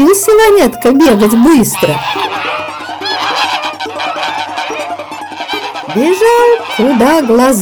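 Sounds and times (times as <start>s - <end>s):
several geese honking loudly: 0.0s - 7.5s
speech: 0.2s - 2.7s, 6.0s - 7.5s.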